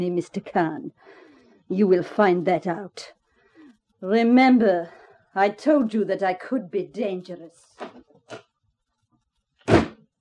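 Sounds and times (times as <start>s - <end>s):
speech: 0.0s - 3.2s, 4.0s - 8.4s
door slamming shut: 9.6s - 10.0s.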